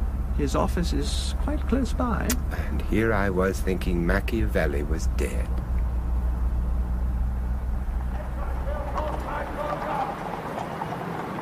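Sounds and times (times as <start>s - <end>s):
low constant rumble: 0.0s - 11.3s
speech: 0.4s - 5.7s
horses' hooves clip-clopping on hard ground at Horse Guards Parade: 2.8s - 11.3s.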